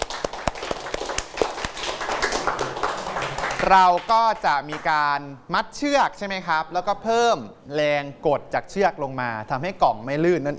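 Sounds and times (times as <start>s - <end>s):
group of students clapping in a classroom: 0.0s - 4.9s
speech: 3.6s - 10.5s.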